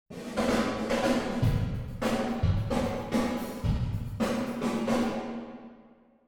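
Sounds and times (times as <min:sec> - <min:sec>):
continuous varying drum: 0:00.2 - 0:05.1.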